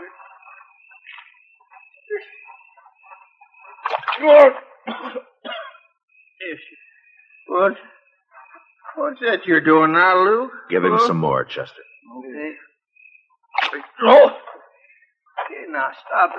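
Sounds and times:
water splashed on man: 3.8 - 4.5, 13.6 - 14.0
speech: 4.2 - 4.6, 9.2 - 11.8, 14.0 - 14.4, 15.9 - 16.3
man coughing and sputtering: 4.8 - 5.8.

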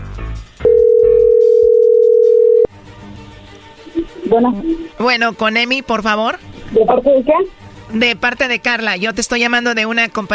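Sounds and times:
telephone dial tone while call connects: 0.7 - 2.7
speech: 4.3 - 10.3.

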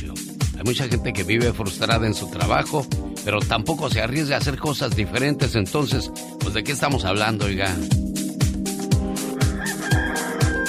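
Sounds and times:
speech: 0.6 - 8.0
rooster crowing: 9.2 - 10.6.

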